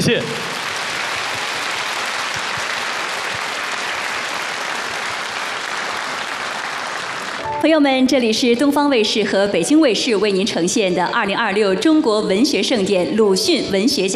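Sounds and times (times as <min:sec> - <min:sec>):
speech: 0:00.0 - 0:00.5, 0:07.6 - 0:14.1
large audience applause for orchestra performance: 0:00.0 - 0:07.5.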